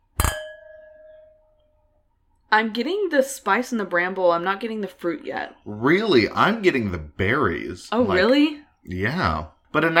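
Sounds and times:
wine glasses clinking in a toast with a clear ringing tone: 0.0s - 1.6s
speech: 2.5s - 9.9s.

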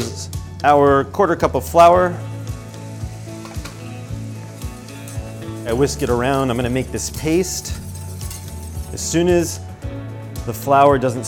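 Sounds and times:
speech: 0.2s - 2.3s, 5.7s - 7.8s, 8.9s - 9.7s, 10.4s - 11.2s
butter melting and sizzling in a pan: 1.6s - 9.3s.

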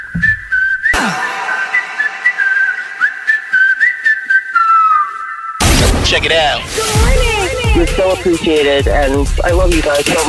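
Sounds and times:
sustained melodic whistled tune: 0.0s - 5.6s
speech: 6.2s - 7.2s, 7.8s - 10.2s.

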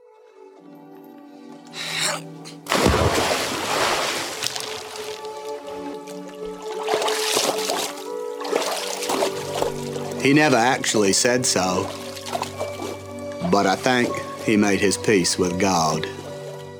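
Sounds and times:
soft sustained music: 0.0s - 16.7s
speech: 2.2s - 3.3s, 10.2s - 12.0s, 13.5s - 16.2s
waves washing and splashing around a moving shrimp boat on open water: 2.8s - 15.1s.

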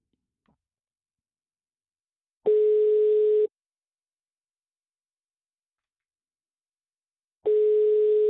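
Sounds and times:
telephone ringback tone on an outgoing call: 2.5s - 3.5s, 7.5s - 8.2s.

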